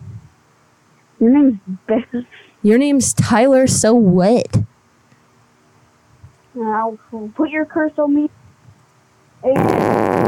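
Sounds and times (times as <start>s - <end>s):
speech: 1.2s - 4.7s, 6.6s - 8.4s, 9.4s - 10.0s
loud buzzy rumbling fart: 9.4s - 10.2s.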